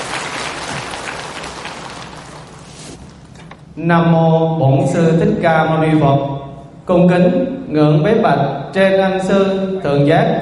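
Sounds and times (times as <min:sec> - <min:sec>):
audience applause at a Buddhist gathering: 0:00.0 - 0:02.8
speech: 0:03.8 - 0:10.3.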